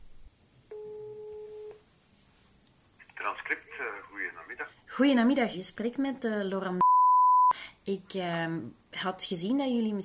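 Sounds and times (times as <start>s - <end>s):
faint hiss: 0.0s - 6.8s, 7.6s - 10.0s
telephone ringback tone of an outgoing call to a studio: 0.7s - 1.7s
speech: 3.3s - 6.8s, 7.9s - 10.0s.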